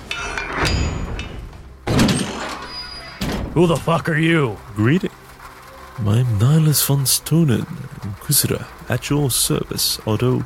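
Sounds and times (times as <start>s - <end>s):
door opening with a scraping, rumbling swing: 2.2s - 3.6s
speech: 3.6s - 5.2s, 6.0s - 10.4s.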